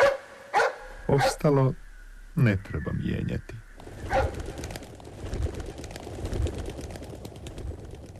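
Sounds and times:
hiss: 0:00.0 - 0:08.1
speech: 0:01.1 - 0:01.8, 0:02.4 - 0:04.3
pigeons cooing: 0:03.8 - 0:04.7.

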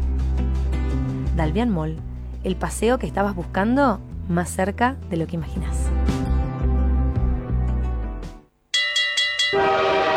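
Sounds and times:
low rumble: 0:00.0 - 0:08.1
speech: 0:01.4 - 0:05.9
bright ringing tones: 0:08.7 - 0:10.1
train horn sound effect: 0:09.5 - 0:10.1.

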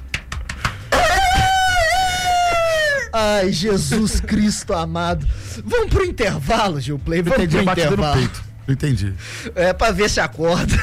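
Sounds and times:
quick taps: 0:00.0 - 0:00.9
rooster crowing: 0:00.9 - 0:03.1
speech: 0:03.2 - 0:10.8.

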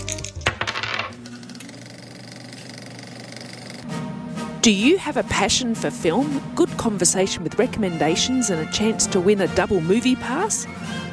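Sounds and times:
dice tumbling across a hard surface: 0:00.0 - 0:01.1
speech: 0:04.6 - 0:11.1.

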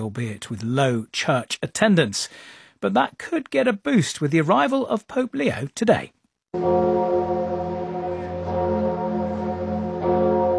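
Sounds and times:
speech: 0:00.0 - 0:07.1
deep heavy cathedral church bells ringing: 0:06.6 - 0:10.5.

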